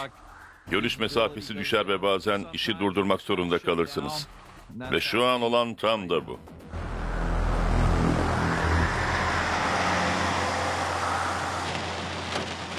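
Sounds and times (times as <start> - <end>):
speech: 0.0 - 6.9
heavy rain pouring: 8.2 - 12.7.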